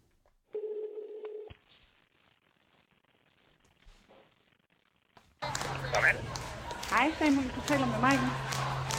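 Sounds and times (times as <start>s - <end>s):
steady ringback tone of phone call to Stockholm: 0.6s - 1.5s
crackly telephone line noise as call connects: 1.5s - 5.8s
speech: 6.1s - 8.5s.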